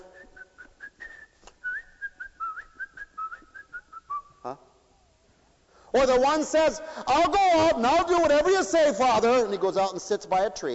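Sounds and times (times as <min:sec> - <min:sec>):
person whistling a lively bouncing melody: 0:00.0 - 0:04.5
speech: 0:04.4 - 0:04.7, 0:05.9 - 0:10.7.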